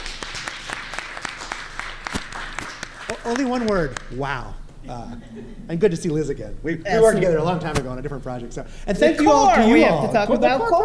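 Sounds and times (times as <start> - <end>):
crowd applauding: 0.0 - 4.2
speech: 3.2 - 10.8.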